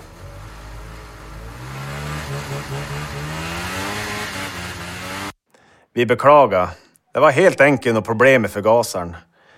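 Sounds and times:
small two-stroke snowmobile engine idling and revving: 0.0 - 5.4
speech: 6.0 - 9.3.

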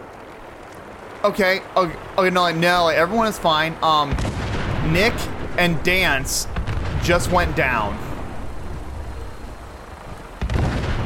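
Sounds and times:
steady rumbling background in a video game: 0.0 - 11.0
speech: 1.2 - 8.0
explosion in a video game: 4.1 - 5.5, 6.4 - 8.3, 10.4 - 11.0.

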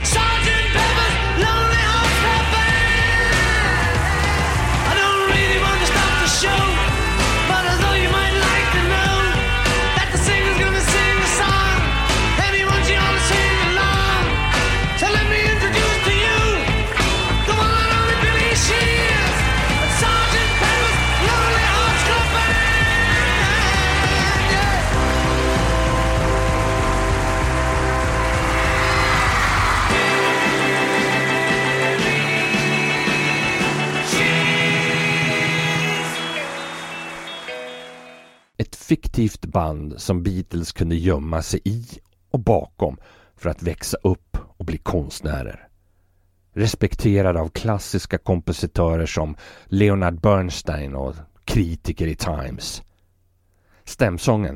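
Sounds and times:
distorted electric guitars: 0.0 - 38.4
psychedelia-influenced classic rock song by a quartet: 0.0 - 38.5
speech: 39.2 - 45.7, 46.6 - 52.9, 53.9 - 54.5.

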